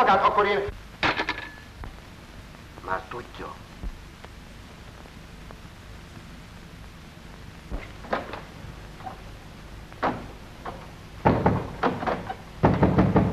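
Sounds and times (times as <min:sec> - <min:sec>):
speech: 0:00.0 - 0:00.8, 0:02.9 - 0:03.6
knocking and pounding on a locked door: 0:11.2 - 0:12.0, 0:12.6 - 0:13.3.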